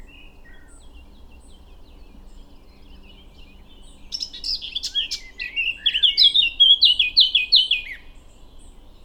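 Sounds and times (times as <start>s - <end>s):
Eurasian blackcap song, Sylvia atricapilla: 0.0s - 9.0s.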